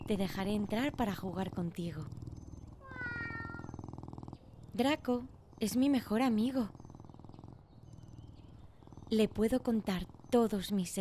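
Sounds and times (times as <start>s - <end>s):
cat behind a window purring: 0.0s - 10.9s
speech: 0.1s - 2.2s, 4.8s - 6.8s, 9.1s - 10.9s
cat behind a window meowing: 2.8s - 3.7s.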